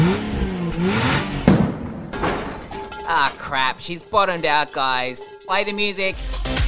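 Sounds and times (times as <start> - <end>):
drag racing car engine revving: 0.0 - 1.8
speech: 3.5 - 6.5.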